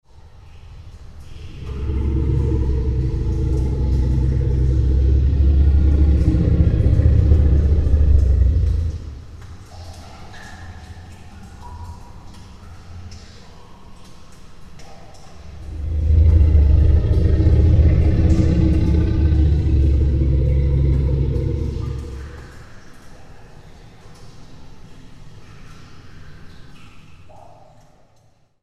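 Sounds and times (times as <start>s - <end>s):
cave monster: 1.2s - 10.6s, 15.4s - 22.8s.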